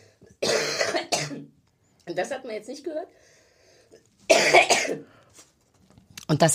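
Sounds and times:
person giving a short harsh dry cough: 0.4s - 1.5s, 4.3s - 5.1s
speech: 2.1s - 5.2s, 6.3s - 6.5s.

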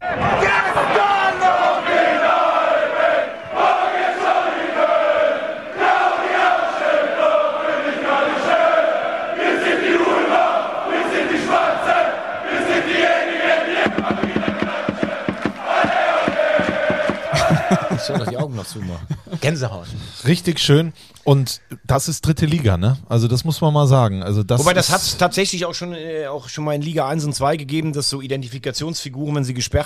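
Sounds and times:
large crowd of football fans chanting in a stadium: 0.0s - 19.0s
rhythmic clapping or drumbeats: 13.7s - 18.4s
laughter: 16.4s - 20.0s
speech: 20.2s - 29.8s.

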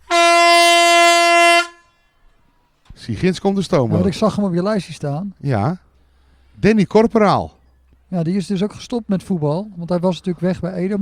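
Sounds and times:
air horn blast: 0.0s - 2.0s
speech: 3.1s - 5.8s, 6.6s - 11.0s.

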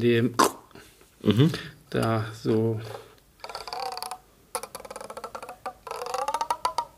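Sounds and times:
speech: 0.0s - 0.5s, 1.2s - 3.0s
taut twisted tendon with membrane creaking under strain: 3.4s - 6.9s.

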